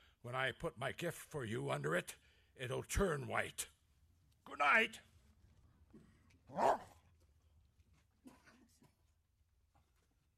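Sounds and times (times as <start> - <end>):
speech: 0.2 - 3.8, 4.5 - 5.1, 6.5 - 6.9
border collie barking: 6.5 - 7.0.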